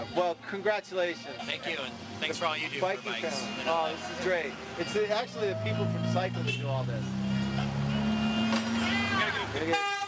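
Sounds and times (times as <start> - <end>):
voices murmuring: 0.0 - 9.9
steady street traffic: 0.0 - 10.0
speech: 0.2 - 7.7, 9.5 - 10.0
car horns honking for cyclists: 1.2 - 10.0
bus horn honking for cyclists: 3.0 - 10.0.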